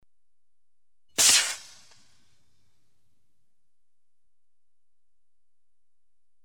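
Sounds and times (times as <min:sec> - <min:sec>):
lifeboat maroon fired: 0:01.2 - 0:02.0.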